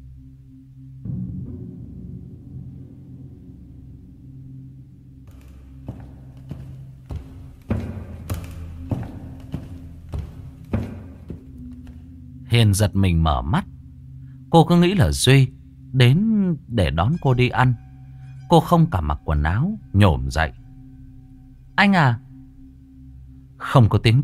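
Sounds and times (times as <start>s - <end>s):
low sustained tone: 0.0s - 24.2s
footsteps crossing a living room at night: 5.3s - 12.2s
speech: 12.6s - 13.7s, 14.5s - 17.9s, 18.5s - 20.6s, 21.8s - 22.2s, 23.6s - 24.2s.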